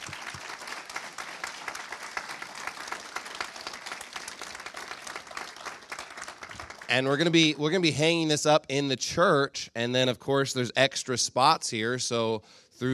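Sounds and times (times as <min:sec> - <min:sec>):
audience applause: 0:00.0 - 0:07.4
speech: 0:06.9 - 0:12.9.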